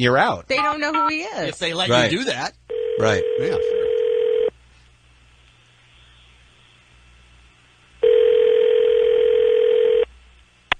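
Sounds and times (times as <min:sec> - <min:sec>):
speech: 0:00.0 - 0:03.8
telephone line tone: 0:02.7 - 0:04.5, 0:08.0 - 0:10.1.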